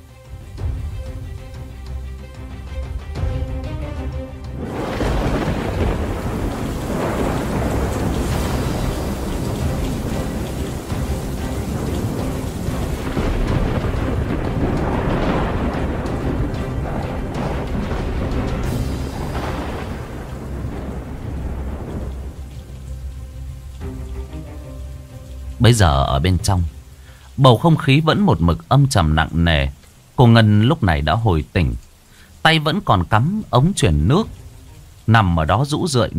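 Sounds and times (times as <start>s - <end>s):
heavy rain in a thunderstorm: 0.0s - 36.1s
deep rolling thunder: 3.2s - 24.7s
speech: 25.7s - 26.8s, 27.4s - 31.8s, 32.4s - 34.4s, 35.1s - 36.1s.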